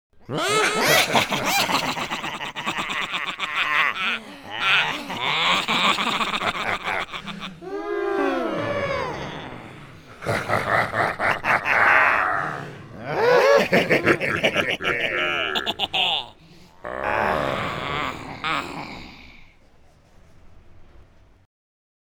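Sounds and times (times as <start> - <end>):
person laughing: 0.3 - 7.9, 9.0 - 18.9.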